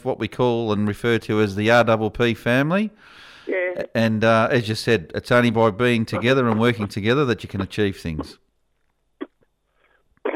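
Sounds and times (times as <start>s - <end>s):
speech: 0.0s - 8.4s
mouth noises: 3.5s - 4.6s, 5.5s - 8.5s
person coughing: 8.1s - 8.4s.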